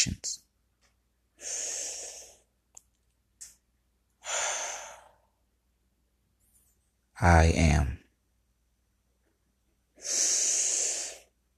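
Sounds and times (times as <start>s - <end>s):
deep slow breathing during a guided relaxation exercise: 1.4s - 2.5s, 4.2s - 5.4s, 10.0s - 11.4s
speech: 7.2s - 8.0s.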